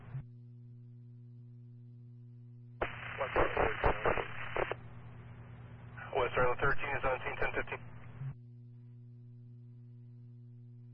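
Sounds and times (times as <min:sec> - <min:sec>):
steady low electrical hum: 0:00.0 - 0:10.9
garbled voice breaking through radio hiss: 0:02.8 - 0:04.7, 0:06.0 - 0:07.8
loud burst of crackling radio static: 0:02.8 - 0:04.9, 0:06.0 - 0:08.3.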